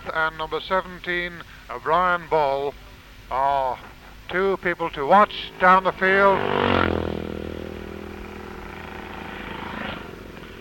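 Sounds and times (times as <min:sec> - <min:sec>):
speech: 0:00.1 - 0:06.7
racing motorcycle engine passing during a race: 0:04.7 - 0:10.5.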